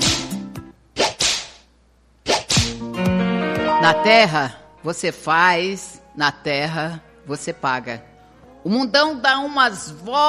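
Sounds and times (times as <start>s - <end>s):
whip cracks: 0.0s - 0.4s, 1.0s - 2.8s
swishing whoosh: 2.3s - 2.8s
speech: 3.9s - 10.2s.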